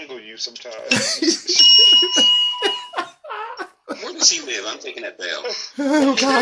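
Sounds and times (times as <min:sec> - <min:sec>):
people chattering: 0:00.0 - 0:06.4
speech: 0:00.4 - 0:02.7, 0:04.2 - 0:06.4
people laughing: 0:00.8 - 0:04.8, 0:05.8 - 0:06.4
bright metallic bell dinging: 0:00.9 - 0:03.2.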